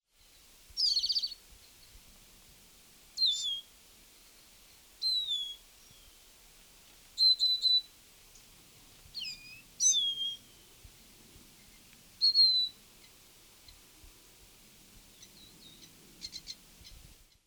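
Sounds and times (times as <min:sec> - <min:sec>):
Lesser Goldfinch: 0:00.8 - 0:01.9, 0:03.2 - 0:03.7, 0:07.2 - 0:08.5, 0:09.1 - 0:10.7, 0:11.6 - 0:13.8, 0:15.1 - 0:17.1.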